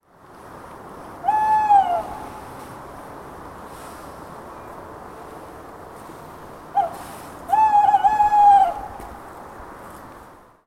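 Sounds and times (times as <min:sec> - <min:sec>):
tawny owl calling: 0:01.2 - 0:02.3, 0:06.8 - 0:09.0.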